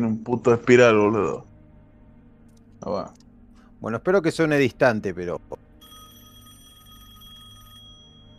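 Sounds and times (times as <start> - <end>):
speech: 0.0 - 1.5, 2.8 - 3.2, 3.8 - 5.6
low hum: 0.0 - 8.3
telephone bell ringing with a bright metallic trill: 5.8 - 8.3.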